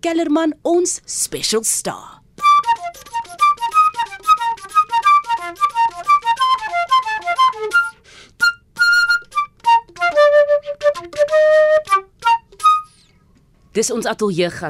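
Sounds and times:
speech: 0:00.0 - 0:03.2, 0:13.8 - 0:14.6
flute melody played live by a studio guest: 0:02.4 - 0:13.1.

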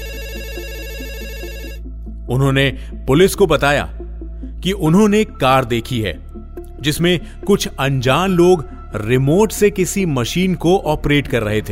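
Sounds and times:
telephone ringing with electronic warbling trill: 0:00.0 - 0:01.9
speech: 0:02.3 - 0:04.0, 0:04.6 - 0:06.2, 0:06.8 - 0:11.7.

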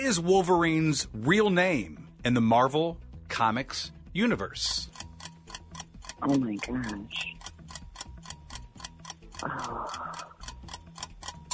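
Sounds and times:
speech: 0:00.0 - 0:05.0, 0:06.2 - 0:07.4, 0:09.4 - 0:10.3
countdown timer ticking: 0:00.0 - 0:11.5.

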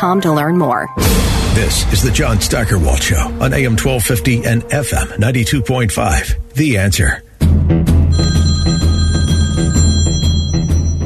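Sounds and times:
speech: 0:00.0 - 0:08.8
radio host's phone ringing with fast trilling pulses during a broadcast: 0:08.1 - 0:11.0.

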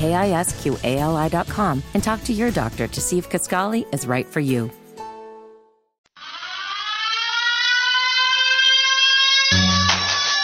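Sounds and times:
speech: 0:00.0 - 0:04.8
civil defense warning siren wailing: 0:06.2 - 0:10.4.

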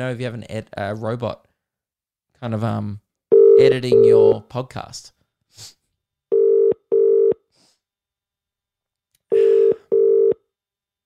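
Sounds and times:
speech: 0:00.0 - 0:01.5, 0:02.4 - 0:03.0, 0:03.6 - 0:05.8
steady electronic telephone tones: 0:06.3 - 0:07.4, 0:09.3 - 0:10.4.

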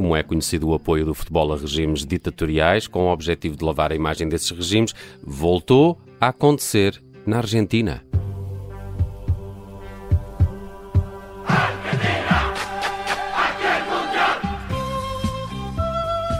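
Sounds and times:
speech: 0:00.1 - 0:08.1
heavy drum-like pulses: 0:10.4 - 0:13.5
orchestral theme music: 0:11.4 - 0:15.8.

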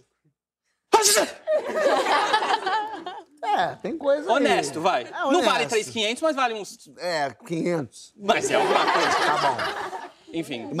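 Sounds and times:
person performing a fake sneeze: 0:00.9 - 0:01.5
speech: 0:01.1 - 0:02.3, 0:03.6 - 0:10.7
laughter: 0:01.4 - 0:06.0, 0:08.3 - 0:10.7.

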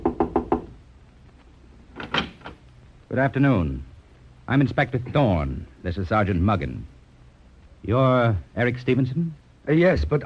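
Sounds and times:
knocking on a door: 0:00.0 - 0:00.8
speech: 0:03.1 - 0:03.9, 0:04.5 - 0:06.9, 0:07.8 - 0:10.2.

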